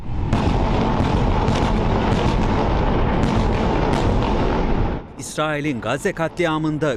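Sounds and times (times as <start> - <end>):
dense barrage of heavy explosions in Tel Aviv: 0.0 - 5.7
speech: 5.4 - 6.9.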